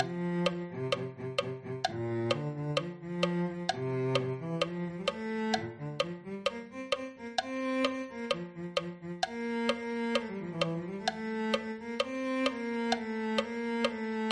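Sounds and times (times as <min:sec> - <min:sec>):
cello: 0:00.0 - 0:14.2.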